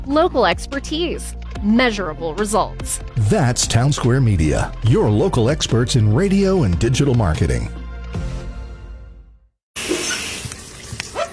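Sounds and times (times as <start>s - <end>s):
speech: 0.1s - 7.8s
water spraying from a shower: 9.8s - 11.3s.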